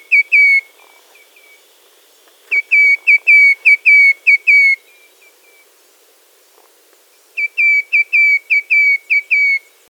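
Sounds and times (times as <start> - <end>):
Black-crested titmouse Baeolophus atricristatus whistled song: 0.0 - 0.7, 2.5 - 5.6, 7.4 - 9.7.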